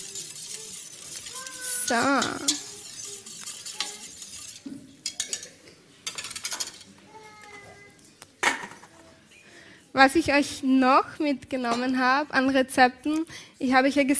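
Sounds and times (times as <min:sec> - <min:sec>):
utensil clinking and scraping against a cooking pot of salted water: 0:00.0 - 0:06.9
speech: 0:01.9 - 0:02.6, 0:10.0 - 0:14.1.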